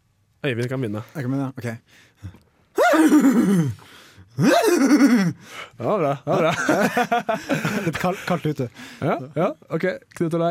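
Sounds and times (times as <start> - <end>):
speech: 0.4 - 2.4, 3.0 - 10.4
person imitating a groggy horse that has just woken up: 2.8 - 3.8, 4.4 - 5.4
laughter: 6.3 - 8.6.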